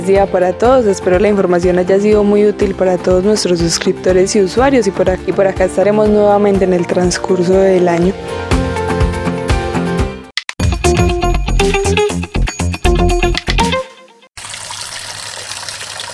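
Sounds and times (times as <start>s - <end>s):
speech: 0.0s - 8.6s
upbeat music: 0.0s - 14.3s
faucet running during handwashing: 14.4s - 16.1s.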